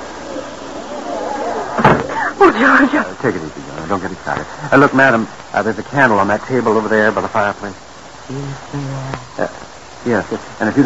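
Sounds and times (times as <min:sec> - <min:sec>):
door pushed shut with a solid thud: 0:01.8 - 0:02.2
speech: 0:01.8 - 0:10.8.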